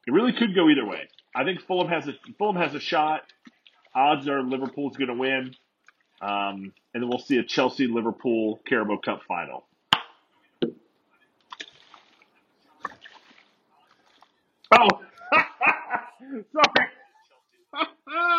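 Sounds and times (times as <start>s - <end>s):
speech: 0.0s - 3.4s, 4.0s - 5.6s, 6.2s - 9.7s, 14.7s - 17.0s
water sloshing in a shaken water bottle: 0.3s - 7.3s, 11.4s - 15.2s
laughter: 14.8s - 18.3s.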